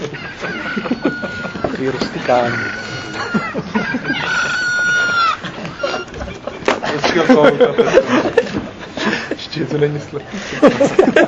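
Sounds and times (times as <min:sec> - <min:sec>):
crowing rooster ringtone from a phone: 0:00.0 - 0:06.2
laughter: 0:00.0 - 0:11.2
speech: 0:00.8 - 0:01.1, 0:01.8 - 0:04.6, 0:07.1 - 0:08.6, 0:09.6 - 0:11.2.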